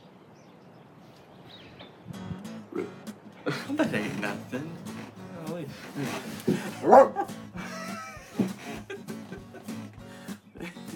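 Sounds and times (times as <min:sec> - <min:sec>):
speech: 0:02.8 - 0:04.9, 0:05.6 - 0:07.3
laughter: 0:03.4 - 0:05.0, 0:05.6 - 0:10.9
dog barking and yipping: 0:06.7 - 0:07.3.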